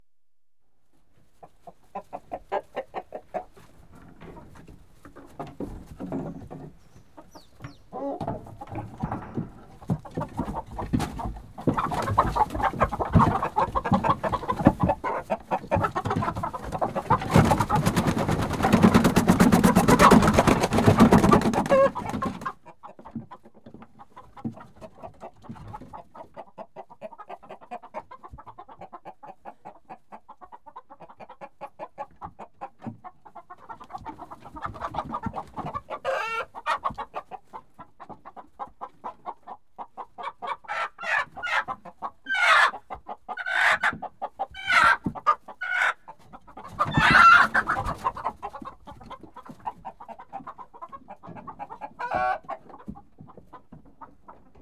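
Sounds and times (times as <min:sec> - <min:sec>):
disturbed hens in a hen house: 0:00.9 - 0:54.6.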